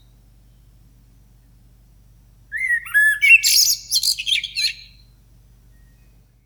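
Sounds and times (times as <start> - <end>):
blackbird singing in the morning: 2.5 - 5.1.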